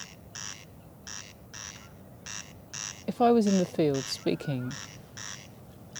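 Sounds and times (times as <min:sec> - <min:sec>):
corncrake calling at night from long grass: 0:00.0 - 0:05.9
speech: 0:03.2 - 0:04.9.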